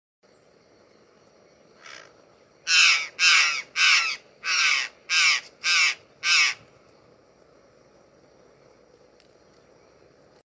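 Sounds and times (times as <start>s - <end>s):
azure-naped jay calling: 1.8s - 6.7s.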